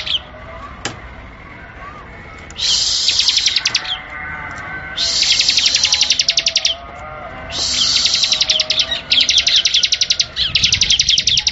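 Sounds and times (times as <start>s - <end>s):
soft outdoor background: 0.0s - 11.4s
bar-winged prinia singing rapid high chips: 2.6s - 6.8s, 7.5s - 11.4s.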